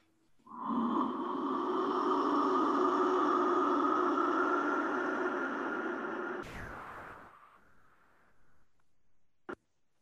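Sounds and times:
deep long breath out during a shamanic breathing exercise: 0.4s - 7.3s.

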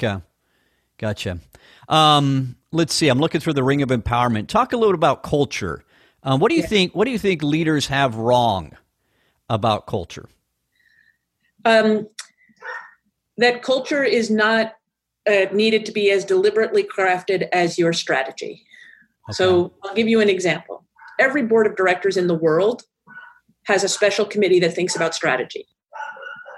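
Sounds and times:
speech: 0.0s - 0.3s, 1.0s - 8.8s, 9.5s - 10.4s, 11.6s - 12.8s, 13.4s - 22.9s, 23.6s - 26.1s
dog barking: 12.6s - 13.0s, 21.0s - 21.2s, 23.1s - 26.5s.

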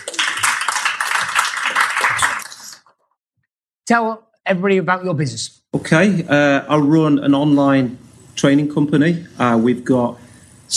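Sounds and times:
audience applause with many hands clapping: 0.0s - 2.8s
speech: 3.9s - 10.7s.

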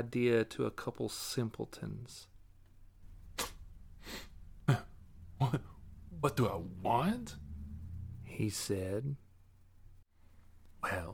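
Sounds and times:
speech: 0.0s - 2.3s, 5.4s - 7.4s, 8.3s - 9.2s, 10.8s - 11.1s
short breathy sniffs: 3.4s - 4.4s.

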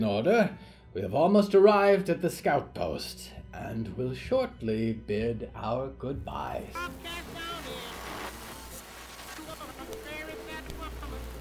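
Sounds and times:
speech: 0.0s - 7.2s
steady rain: 6.8s - 11.3s.

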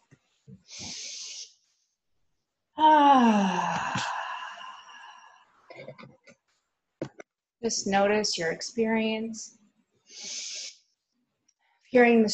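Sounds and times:
person breathing in a guided group meditation: 0.6s - 1.6s, 3.2s - 6.0s, 10.1s - 10.8s
faint breathy sounds: 0.6s - 1.7s, 2.8s - 6.0s
speech: 7.6s - 9.6s, 11.9s - 12.3s.

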